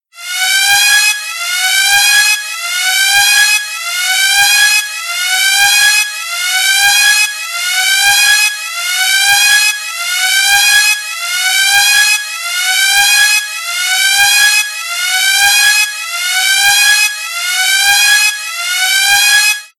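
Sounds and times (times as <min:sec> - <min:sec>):
spaceship emergency meltdown alarm: 0:00.1 - 0:19.7.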